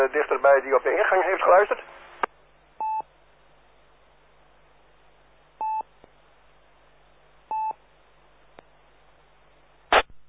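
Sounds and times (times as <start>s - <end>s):
speech: 0.0s - 2.0s
steady band-limited radio static: 0.0s - 2.3s.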